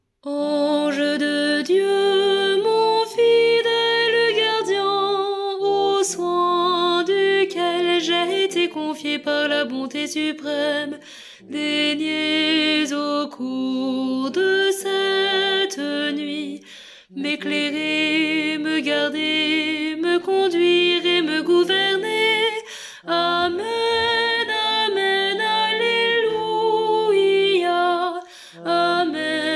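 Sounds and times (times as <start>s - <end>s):
soprano singing a prayer: 0.2s - 29.5s.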